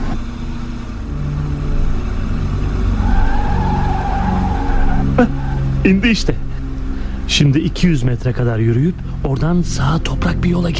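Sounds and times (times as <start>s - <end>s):
heavy vehicle engine rumbling: 0.0s - 10.7s
minibus brakes squealing: 0.0s - 10.7s
speech: 5.2s - 6.5s, 7.3s - 10.7s.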